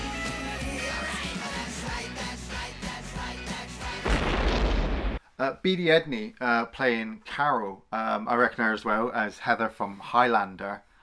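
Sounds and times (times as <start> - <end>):
music: 0.0 - 4.5
distant explosion boom: 4.0 - 5.2
speech: 5.4 - 10.9.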